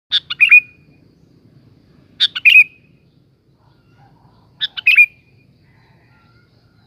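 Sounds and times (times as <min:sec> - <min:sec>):
sooty-headed bulbul song with chattering phrases and whistles: 0:00.1 - 0:01.1, 0:02.2 - 0:06.4.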